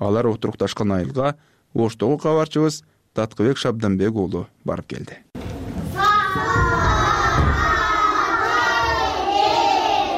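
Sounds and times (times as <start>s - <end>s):
speech: 0.0s - 5.5s
first-grade schoolchildren shouting at a village secondary school in Kyrgyzstan: 5.9s - 10.1s.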